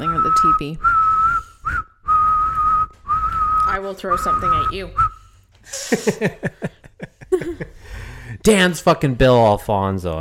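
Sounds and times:
shrill whistle blasts: 0:00.0 - 0:05.4
speech: 0:00.3 - 0:01.0, 0:03.8 - 0:06.7, 0:08.4 - 0:10.1
laughter: 0:05.7 - 0:07.9.

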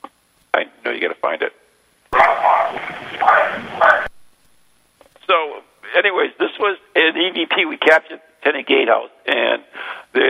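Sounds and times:
faint hiss: 0:00.0 - 0:10.2
speech: 0:01.0 - 0:01.6, 0:06.0 - 0:10.2
tinny dog bark on an EVP recording: 0:02.2 - 0:04.1.

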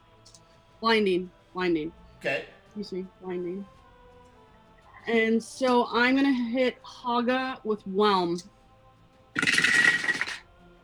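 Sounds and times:
speech: 0:00.8 - 0:03.8, 0:05.0 - 0:08.6
handful of dice rolling and clattering: 0:09.4 - 0:10.4.

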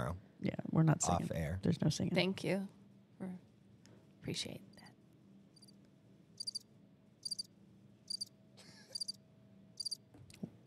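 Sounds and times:
speech: 0:00.4 - 0:03.4, 0:04.2 - 0:04.8
crickets chirping: 0:05.6 - 0:05.8, 0:06.4 - 0:07.5, 0:08.1 - 0:08.3, 0:08.9 - 0:09.2, 0:09.8 - 0:10.0.

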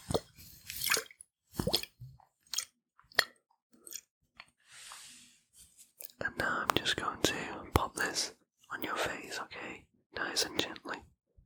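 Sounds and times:
wet squishing of liquid lavender oil drops being worked in: 0:00.1 - 0:04.1
liquid lavender oil drips: 0:00.1 - 0:04.5
speech: 0:06.9 - 0:11.1.

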